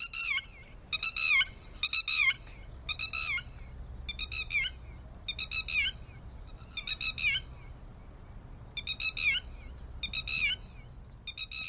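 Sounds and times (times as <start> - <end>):
Eurasian stone-curlew giving wailing whistled calls: 0.0 - 6.0, 8.8 - 10.7, 11.3 - 11.6
low rumble: 0.0 - 11.6.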